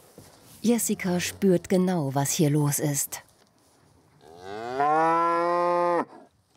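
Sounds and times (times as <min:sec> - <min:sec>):
speech: 0:00.6 - 0:03.2
cow mooing for her calf: 0:04.2 - 0:06.3.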